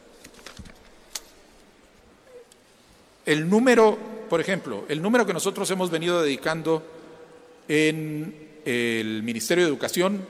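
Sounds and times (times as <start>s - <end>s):
pile of papers rustling and crinkling while being shuffled: 0.1s - 1.3s
speech: 3.3s - 7.0s, 7.7s - 10.2s.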